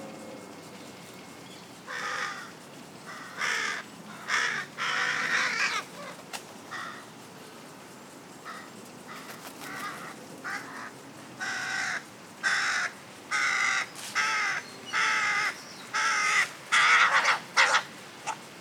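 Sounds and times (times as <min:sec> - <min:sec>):
Carrion crow Corvus corone giving harsh raspy caws: 0:01.9 - 0:06.1, 0:08.5 - 0:17.8.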